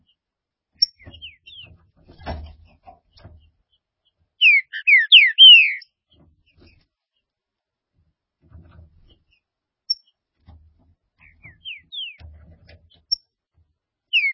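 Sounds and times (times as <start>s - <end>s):
green-winged saltator whistled song: 4.4s - 5.8s, 11.6s - 12.2s.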